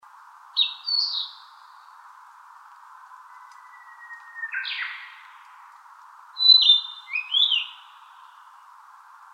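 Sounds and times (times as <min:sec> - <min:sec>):
narcissus flycatcher song of short bright whistled phrases: 0:00.6 - 0:02.0, 0:03.2 - 0:05.7, 0:06.4 - 0:08.6.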